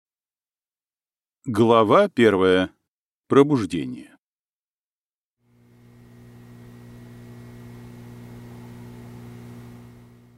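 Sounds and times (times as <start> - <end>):
speech: 1.4 - 4.1
steady monotonous low buzzing electrical hum with faint hiss: 5.5 - 10.3.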